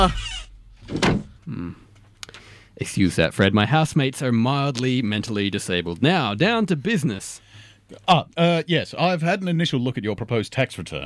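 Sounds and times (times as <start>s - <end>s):
speech: 0.0s - 0.3s, 2.8s - 11.0s
door to a room creaking open and thudding shut: 0.0s - 1.5s.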